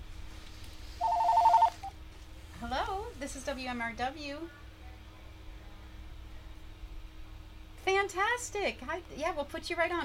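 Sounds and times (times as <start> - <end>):
brief tone: 1.0 - 1.9
telephone ringing with a rapid warbling two-tone trill: 1.0 - 1.9
speech: 3.3 - 4.6, 8.0 - 10.0.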